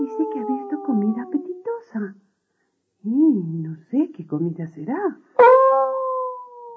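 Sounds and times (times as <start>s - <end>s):
wolf howling: 0.0s - 1.9s, 5.4s - 6.7s
speech: 4.3s - 5.3s.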